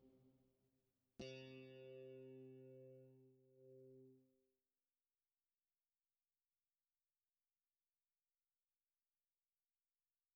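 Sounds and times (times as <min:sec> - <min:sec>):
electric guitar: 0:01.2 - 0:04.2.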